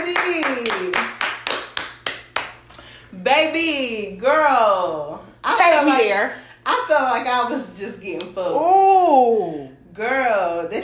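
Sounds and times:
hand clapping applause: 0:00.0 - 0:02.8
speech: 0:03.3 - 0:10.8.

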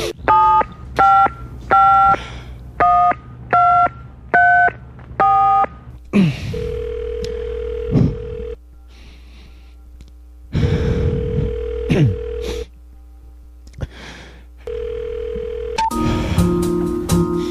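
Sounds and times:
steady tones and sustained hum on the telephone line: 0:00.0 - 0:13.6, 0:14.4 - 0:16.4.

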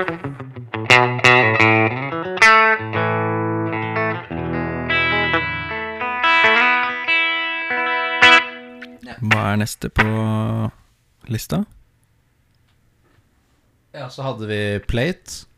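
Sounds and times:
speech: 0:00.0 - 0:00.3, 0:09.5 - 0:11.8, 0:14.1 - 0:15.5
instrument notes and chords with room reverb in a large studio room: 0:01.1 - 0:09.0.

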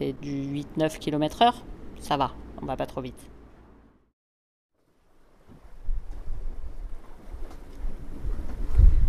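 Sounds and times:
speech: 0:00.0 - 0:03.4
wind rushing and buffeting around a sailboat under way: 0:05.8 - 0:09.0.

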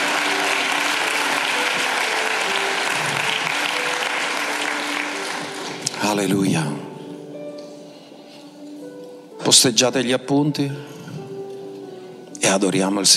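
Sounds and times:
audience applauding: 0:00.0 - 0:06.3
speech: 0:06.2 - 0:06.8, 0:09.5 - 0:11.0, 0:12.6 - 0:13.1.

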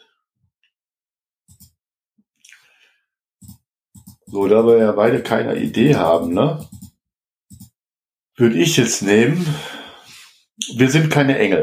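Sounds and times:
short sharp computer mouse clicks: 0:01.5 - 0:01.8, 0:03.4 - 0:04.5, 0:05.1 - 0:07.8
speech: 0:04.3 - 0:06.8, 0:08.4 - 0:09.8, 0:10.7 - 0:11.6.

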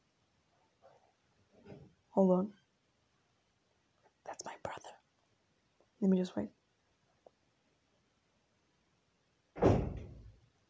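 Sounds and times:
speech: 0:02.2 - 0:02.6, 0:06.0 - 0:06.6
door shutting with a solid thud: 0:09.6 - 0:10.3.

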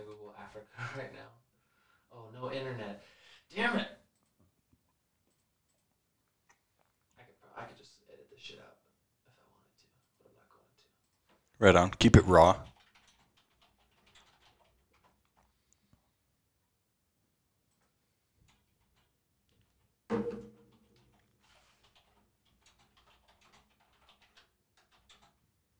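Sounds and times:
speech: 0:00.6 - 0:01.4, 0:02.1 - 0:04.0, 0:11.6 - 0:12.7
computer keyboard clacking while typing: 0:12.7 - 0:15.5, 0:20.6 - 0:25.4.

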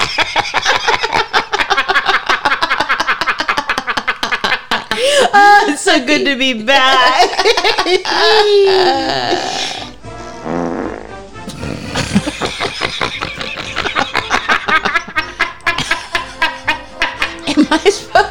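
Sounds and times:
laughter: 0:00.0 - 0:05.5, 0:06.8 - 0:09.4, 0:11.5 - 0:18.2
speech: 0:06.0 - 0:09.8
drawn-out loud real fart: 0:09.8 - 0:12.3.

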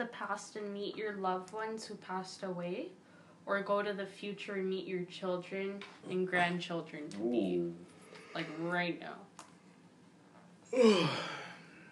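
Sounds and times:
speech: 0:00.0 - 0:09.3, 0:10.7 - 0:11.4
drawn-out yawn with voiced groan: 0:10.7 - 0:11.9.

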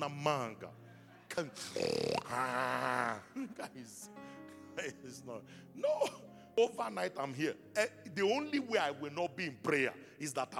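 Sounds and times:
speech: 0:00.0 - 0:00.8, 0:01.4 - 0:10.5
voice mimicking a pastor snoring: 0:01.7 - 0:03.0.

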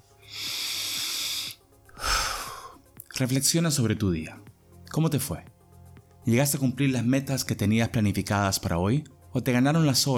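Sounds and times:
deep breath in and out: 0:00.2 - 0:02.8
speech: 0:03.2 - 0:05.6, 0:06.3 - 0:10.1.

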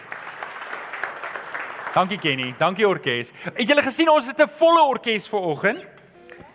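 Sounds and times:
crowd applauding: 0:00.0 - 0:03.3
speech: 0:02.0 - 0:05.9.

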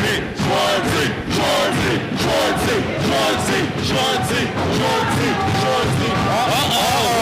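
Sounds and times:
arena crowd chanting a wrestler's name: 0:00.0 - 0:07.2.

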